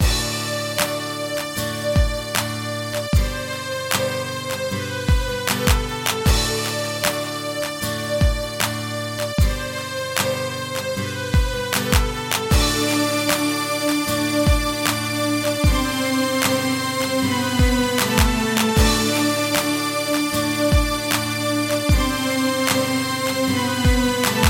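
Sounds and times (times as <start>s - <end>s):
guitar soundscape: 0.0s - 24.4s.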